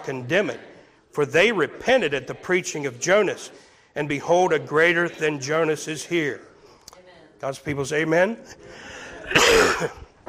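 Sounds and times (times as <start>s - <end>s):
speech: 0.0s - 6.5s, 7.4s - 10.0s
quiet breath: 3.5s - 4.0s, 8.4s - 9.3s
single loud harsh cough: 9.2s - 10.2s.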